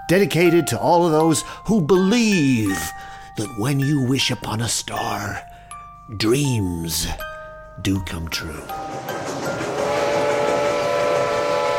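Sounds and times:
speech: 0:00.1 - 0:05.5, 0:06.1 - 0:09.2
miniature steam train rumble and hiss: 0:08.7 - 0:11.7
miniature steam train whistle in an amusement park: 0:09.5 - 0:11.7.

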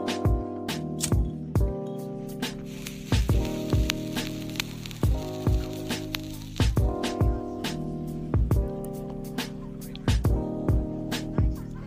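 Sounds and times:
slow noir-style jazz chords in a 1950s bar: 0:00.0 - 0:11.8
soft hiss: 0:02.5 - 0:06.9.

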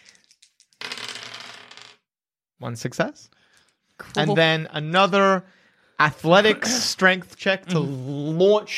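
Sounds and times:
dice clicking as they are handled: 0:00.0 - 0:00.9
dice rolled for a stealth check in a tabletop game: 0:00.0 - 0:02.0
speech: 0:02.6 - 0:03.4, 0:04.1 - 0:08.7.

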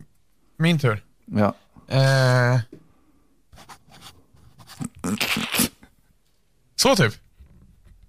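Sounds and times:
speech: 0:00.6 - 0:02.8, 0:06.8 - 0:07.2
pen or pencil scratching across a small paper receipt while writing an autograph: 0:03.6 - 0:05.1.

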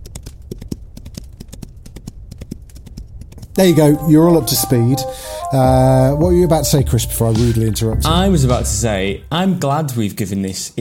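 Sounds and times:
horse hooves galloping: 0:00.0 - 0:03.6
speech: 0:03.6 - 0:10.7
low rumbling background: 0:05.8 - 0:09.6.

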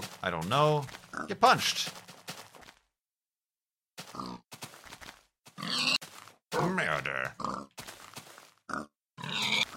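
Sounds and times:
speech: 0:00.2 - 0:02.0
pig grunting and oinking: 0:01.0 - 0:01.4, 0:04.0 - 0:04.4, 0:05.6 - 0:06.0, 0:06.9 - 0:07.8, 0:08.7 - 0:09.7
pig squealing snort: 0:05.6 - 0:06.0, 0:07.4 - 0:07.7, 0:08.7 - 0:09.7.

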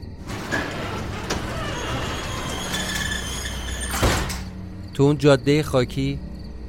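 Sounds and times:
heavy warehouse door sliding open in a desert: 0:00.0 - 0:04.7
speech: 0:05.0 - 0:06.2.

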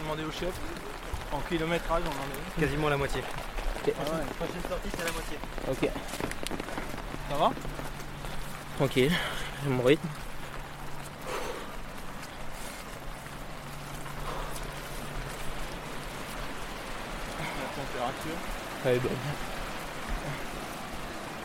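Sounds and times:
steady rain falling: 0:00.0 - 0:21.4
speech: 0:00.1 - 0:06.6, 0:07.3 - 0:07.7, 0:08.8 - 0:10.3, 0:18.2 - 0:19.6
low constant hum: 0:05.8 - 0:21.4.

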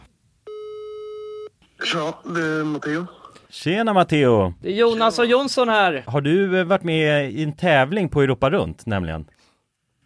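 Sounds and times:
telephone ringback tone of an outgoing call: 0:00.5 - 0:01.5
speech: 0:01.8 - 0:09.4.

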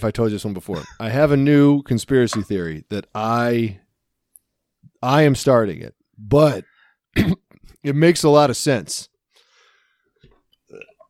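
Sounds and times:
speech: 0:00.0 - 0:03.8, 0:05.0 - 0:09.1
hiccups: 0:00.7 - 0:01.0.

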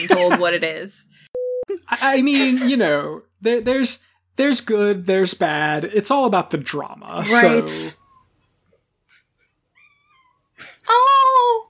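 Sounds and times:
speech: 0:00.0 - 0:08.0, 0:10.6 - 0:11.6
cat making short breathy chirps: 0:09.7 - 0:10.5
cat meowing: 0:09.8 - 0:10.5.

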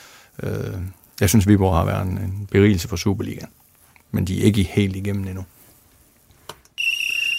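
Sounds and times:
speech: 0:00.4 - 0:05.6
referee whistle blast: 0:06.8 - 0:07.3.

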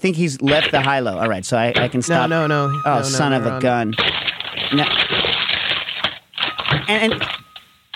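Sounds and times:
speech: 0:00.0 - 0:05.2, 0:06.9 - 0:07.4
voice murmuring: 0:01.8 - 0:04.0
paper being crumpled: 0:04.0 - 0:07.4.

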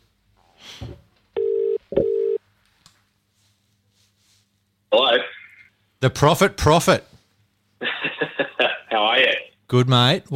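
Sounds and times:
phone line ringback tone: 0:01.4 - 0:02.4
soft rustle: 0:02.4 - 0:04.7
speech: 0:06.0 - 0:07.1, 0:09.7 - 0:10.3
laughter: 0:07.8 - 0:09.2.

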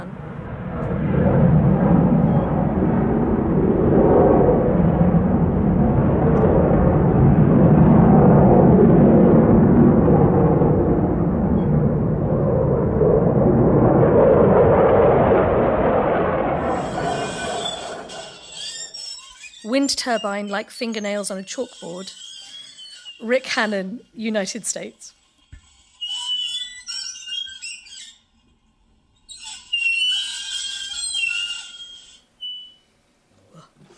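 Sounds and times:
training fighter jets passing low over a wildlife conservation sanctuary in Taiwan: 0:00.0 - 0:19.1
speech: 0:19.9 - 0:22.2, 0:23.2 - 0:25.2.

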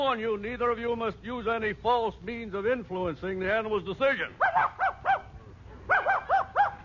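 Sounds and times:
speech: 0:00.0 - 0:04.8
dog barking in a courtroom: 0:04.4 - 0:05.3, 0:05.9 - 0:06.8.

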